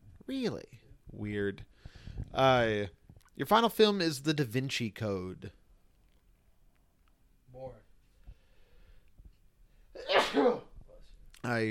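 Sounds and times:
speech: 0.3s - 5.6s, 10.0s - 10.7s, 11.4s - 11.6s
person sneezing: 10.0s - 10.8s.

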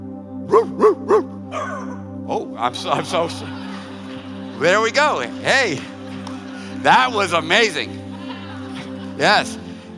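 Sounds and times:
dog barking: 0.5s - 2.0s
speech: 2.6s - 3.6s, 4.6s - 5.9s, 6.8s - 8.0s, 9.2s - 9.6s
laughter: 2.7s - 9.9s.

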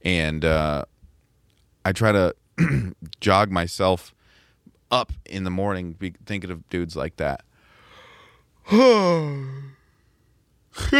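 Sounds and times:
speech: 0.0s - 0.9s, 1.8s - 4.2s, 4.9s - 7.5s, 8.7s - 9.8s, 10.8s - 10.9s
person yawning: 8.6s - 9.9s.

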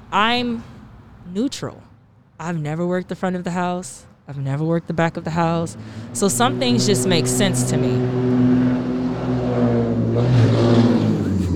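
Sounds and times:
speech: 0.1s - 0.7s, 1.3s - 8.6s, 10.2s - 11.0s
car engine labouring and revving: 4.7s - 11.5s.

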